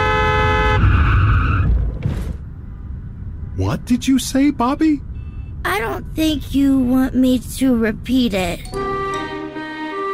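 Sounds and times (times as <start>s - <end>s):
speeding car horn honking: 0.0s - 1.0s
loud car engine rumble: 0.0s - 8.6s
speech: 3.7s - 8.8s.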